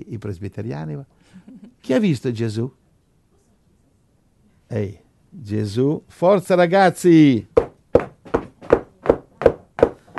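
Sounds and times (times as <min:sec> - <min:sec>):
speech: 0:00.0 - 0:02.8, 0:04.7 - 0:07.6
knocking on a door: 0:07.6 - 0:10.1.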